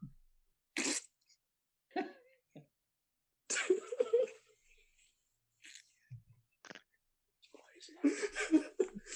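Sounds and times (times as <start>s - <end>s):
short low rumbling fart sound: 0.8s - 1.2s
laughter: 8.0s - 9.1s.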